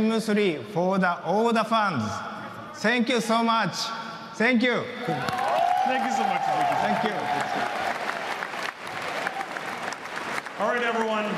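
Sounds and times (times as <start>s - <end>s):
speech: 0.0s - 8.0s, 10.6s - 11.3s
shouts: 5.0s - 8.1s
large audience clapping and cheering: 5.0s - 11.3s.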